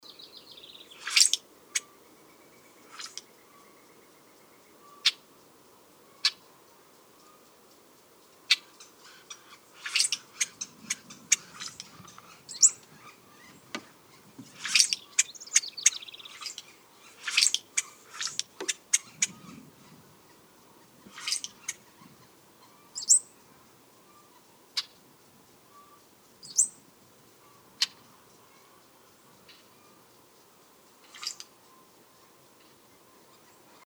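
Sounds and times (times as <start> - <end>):
Brewer's blackbird Euphagus cyanocephalus calling: 0.0 - 5.2, 8.5 - 25.1, 25.7 - 30.1.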